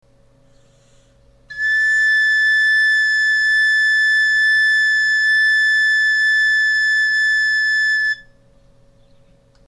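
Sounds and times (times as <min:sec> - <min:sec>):
galoubet playing a B flat note: 0:01.5 - 0:08.3.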